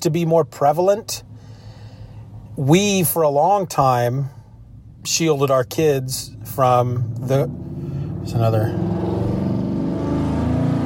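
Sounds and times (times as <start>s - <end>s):
speech: 0.0s - 1.3s, 2.6s - 4.4s, 5.0s - 9.1s
big loud truck with deep engine passing by: 7.4s - 10.8s.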